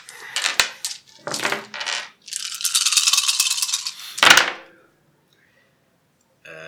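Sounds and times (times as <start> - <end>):
dice rattling across a hard surface: 0.0 - 4.6.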